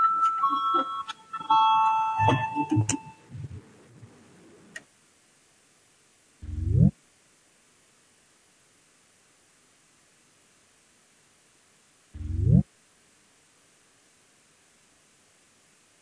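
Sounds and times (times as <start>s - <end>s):
parliament voting bell ringing with electronic chiming tone: 0.0s - 3.3s.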